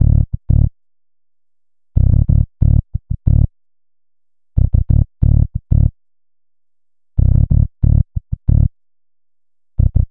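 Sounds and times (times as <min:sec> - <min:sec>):
distorted funky electric bass loop: 0:00.0 - 0:00.7, 0:02.0 - 0:03.5, 0:04.6 - 0:05.9, 0:07.2 - 0:08.7, 0:09.8 - 0:10.0.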